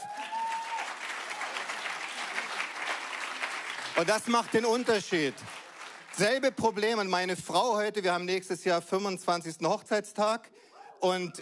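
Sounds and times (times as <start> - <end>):
crowd applauding: 0.0 - 6.6
speech: 4.0 - 5.6, 6.2 - 11.4.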